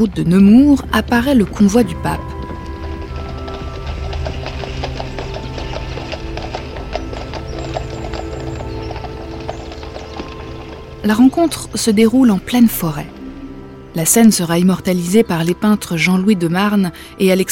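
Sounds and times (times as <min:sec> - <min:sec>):
speech: 0:00.0 - 0:02.4, 0:11.0 - 0:13.2, 0:14.0 - 0:17.5
harness or wheels rattling and creaking: 0:00.0 - 0:11.9
horse hooves clip-clopping on a hard surface: 0:00.0 - 0:13.0.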